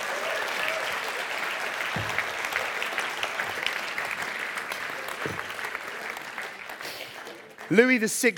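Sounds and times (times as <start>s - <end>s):
rapturous applause from live audience: 0.0s - 8.3s
brief low thumps: 1.9s - 2.4s
speech: 7.7s - 8.3s.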